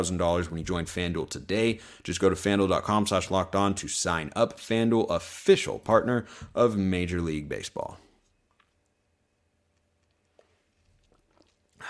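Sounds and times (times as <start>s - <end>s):
speech: 0.0s - 8.0s
person sipping a drink: 10.0s - 11.8s.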